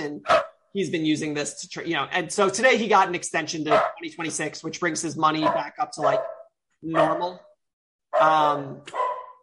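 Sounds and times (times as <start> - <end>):
speech: 0.1 - 7.5, 8.2 - 9.0
dogs barking indoors in a room: 0.2 - 0.6, 3.7 - 4.1, 5.4 - 7.4, 8.2 - 9.4.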